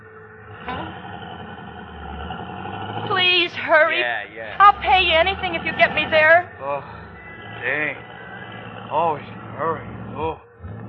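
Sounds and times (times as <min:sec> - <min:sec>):
busy traffic hum: 0:00.0 - 0:10.8
car engine rumbling in traffic: 0:00.0 - 0:10.8
speech: 0:03.7 - 0:07.0, 0:07.6 - 0:08.1, 0:08.9 - 0:10.5.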